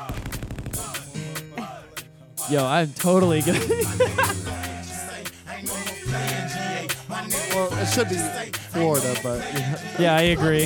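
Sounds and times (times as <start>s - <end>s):
sharp booming gunshots: 0.0s - 1.0s
music track: 0.8s - 10.6s
speech: 2.5s - 4.6s, 7.9s - 10.6s
laughter: 3.2s - 5.1s, 9.3s - 10.4s.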